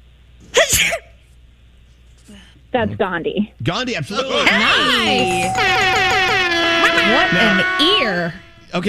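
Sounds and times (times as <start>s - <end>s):
person sneezing: 0.5s - 1.1s
speech: 0.7s - 1.1s, 2.3s - 6.4s, 7.0s - 8.8s.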